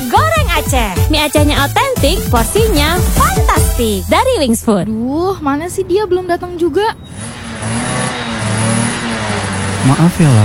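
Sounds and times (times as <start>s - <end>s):
speech: 0.7s - 7.9s, 9.8s - 10.4s
motorcycle engine running and revving: 5.8s - 10.4s.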